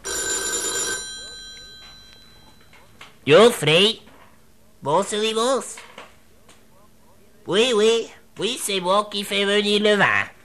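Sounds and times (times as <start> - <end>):
telephone ringing: 0.0 - 3.5
speech: 3.2 - 4.0, 4.8 - 5.8, 7.4 - 10.4.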